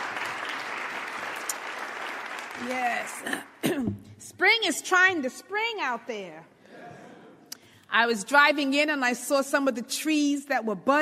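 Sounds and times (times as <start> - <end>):
audience applause: 0.0 - 3.5
speech: 2.6 - 6.5, 7.9 - 10.9.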